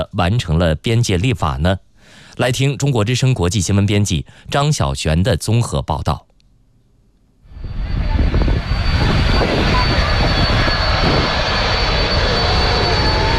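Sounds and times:
speech: 0.0 - 6.3
aircraft engine roar with a high whine: 7.5 - 13.3.

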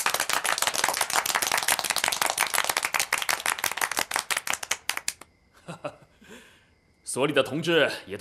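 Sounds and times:
crowd applauding at a meeting: 0.0 - 5.3
speech: 7.1 - 8.2.

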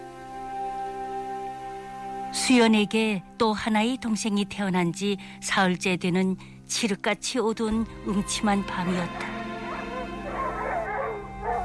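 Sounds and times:
speech: 2.3 - 9.3
dog barking frantically at night: 9.7 - 11.6.

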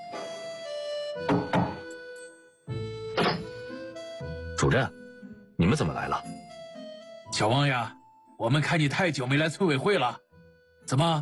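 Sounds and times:
music: 0.0 - 11.2
knocking on a wooden door: 1.2 - 1.8
speech: 4.6 - 5.0, 5.6 - 6.4, 7.3 - 10.2, 10.9 - 11.2.

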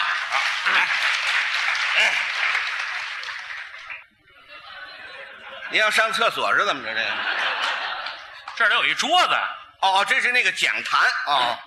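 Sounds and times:
audience applause: 0.0 - 4.1
laughter: 0.0 - 8.9
speech: 0.3 - 2.7, 5.7 - 7.4, 8.6 - 11.6.

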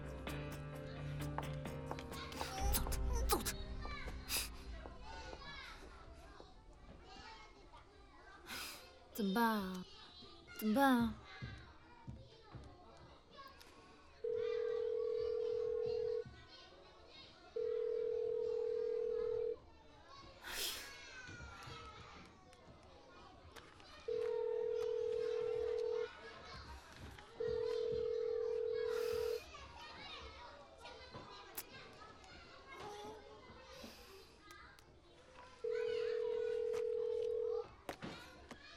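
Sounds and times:
children playing and chattering: 0.0 - 38.7
speech: 9.2 - 9.9, 10.6 - 11.2
phone ringback tone for an unanswered call: 14.2 - 16.2, 17.6 - 19.6, 27.4 - 29.4, 35.6 - 37.6.

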